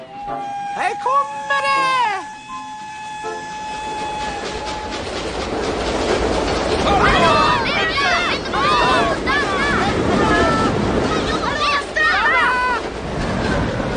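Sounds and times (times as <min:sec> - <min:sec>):
whistle-like tone: 0:00.0 - 0:05.0
speech: 0:00.3 - 0:01.9
train wheels rumbling on rails: 0:02.3 - 0:13.9.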